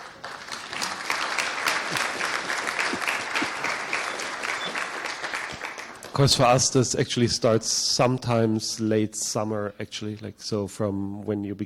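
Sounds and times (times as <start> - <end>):
audience applause for volunteers: 0.0 - 6.7
speech: 6.2 - 11.6.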